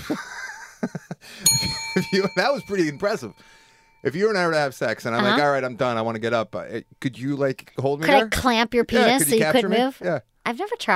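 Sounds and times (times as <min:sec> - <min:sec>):
small bell ringing: 0:01.4 - 0:07.4
speech: 0:02.0 - 0:10.9.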